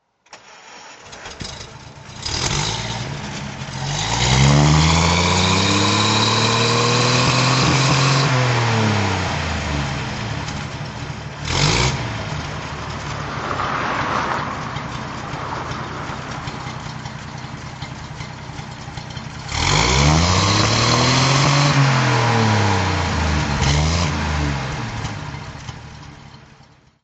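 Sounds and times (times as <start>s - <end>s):
Alvis Silver Eagle SG engine throttle: 0.4s - 27.0s.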